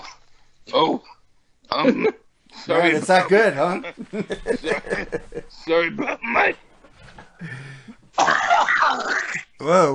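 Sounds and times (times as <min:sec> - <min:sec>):
speech: 0:00.7 - 0:06.7, 0:07.4 - 0:09.9
man coughing harshly after smoking a bong hit: 0:01.7 - 0:02.2, 0:08.2 - 0:09.4
laughter: 0:03.0 - 0:06.6
man clearing his throat after a bong hit: 0:08.2 - 0:09.4.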